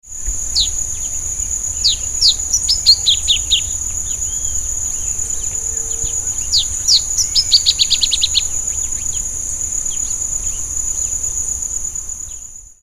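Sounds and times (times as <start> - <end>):
Geothlypis aequinoctialis calling: 0.5 - 10.7.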